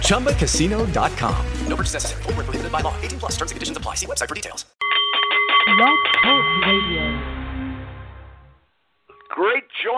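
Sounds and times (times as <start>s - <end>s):
speech: 0.1s - 4.9s, 5.7s - 7.1s, 9.4s - 9.9s
Nepalese meditation singing bowl ringing: 4.8s - 7.9s.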